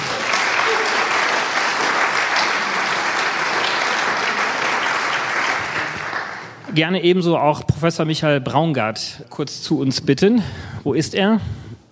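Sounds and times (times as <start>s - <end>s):
audience applause: 0.0s - 6.6s
speech: 6.8s - 11.6s.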